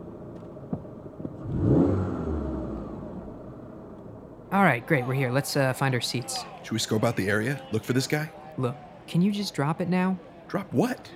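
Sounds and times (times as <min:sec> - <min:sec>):
Chrysler 300 SRT8 rental car engine revving and pulling away: 0:01.2 - 0:04.3
speech: 0:04.5 - 0:11.1.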